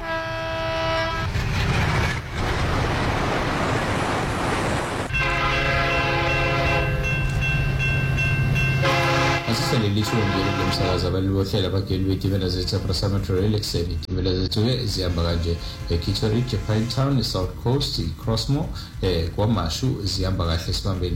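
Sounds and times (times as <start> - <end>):
train horn sounding a sustained multi-tone chord: 0.0 - 1.4, 5.1 - 7.5, 8.6 - 11.2, 15.0 - 17.3
train rumbling past: 0.0 - 21.1.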